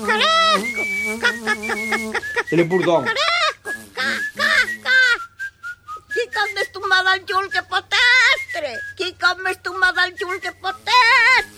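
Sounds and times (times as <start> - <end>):
human voice imitating a rooster's crow: 0.0 - 1.0, 2.8 - 5.2
laughter: 0.0 - 11.5
speech: 1.9 - 3.2.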